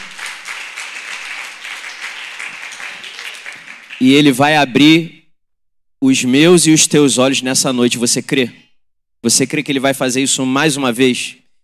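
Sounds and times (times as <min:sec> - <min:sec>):
audience applauding: 0:00.0 - 0:04.4
speech: 0:04.0 - 0:05.2, 0:06.0 - 0:11.4.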